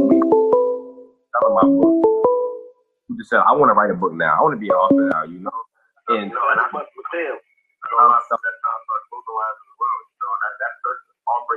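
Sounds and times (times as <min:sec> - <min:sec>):
phone ringing with a melodic whistle-like ringtone: 0:00.0 - 0:02.7
speech: 0:01.5 - 0:02.1, 0:03.2 - 0:09.6.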